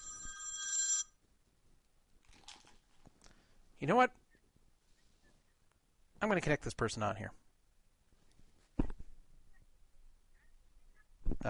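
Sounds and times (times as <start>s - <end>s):
telephone ringing with a trilling electronic tone: 0.0s - 1.2s
speech: 3.8s - 4.2s, 6.2s - 7.4s.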